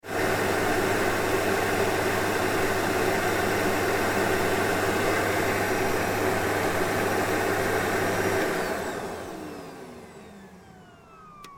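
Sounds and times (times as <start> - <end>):
vacuum cleaner switching off: 0.1 - 11.5.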